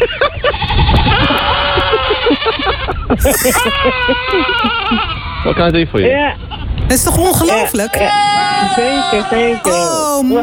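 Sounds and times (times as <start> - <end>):
speech: 0.0 - 0.4, 3.2 - 10.4
goats screaming: 0.6 - 5.6, 7.8 - 10.4.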